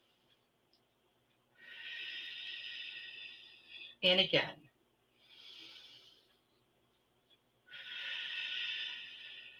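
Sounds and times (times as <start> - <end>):
deep breaths: 1.5 - 4.0, 5.1 - 6.6, 7.6 - 9.5
speech: 4.0 - 4.6.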